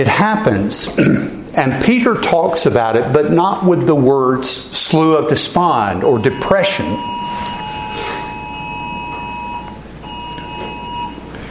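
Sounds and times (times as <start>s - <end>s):
speech: 0.0s - 7.5s
steady hum: 0.0s - 11.5s
Amber Alert emergency tone on phone: 6.0s - 11.3s.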